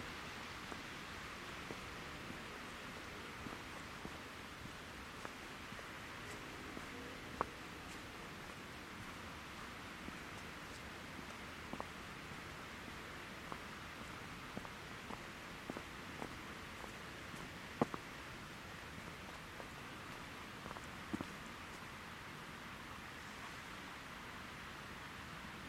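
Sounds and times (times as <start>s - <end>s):
steady hiss in a winter forest park: 0.0s - 25.6s
soft scattered ticks and taps: 10.2s - 11.9s, 13.4s - 18.0s, 20.1s - 21.8s.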